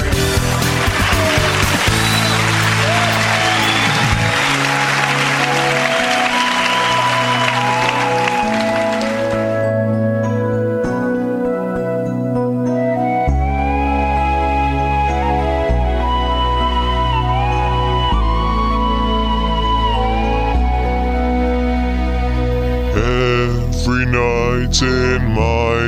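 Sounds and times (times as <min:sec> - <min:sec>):
dense fairly loud crowd clapping: 0:00.0 - 0:09.7
music playing: 0:00.0 - 0:25.8.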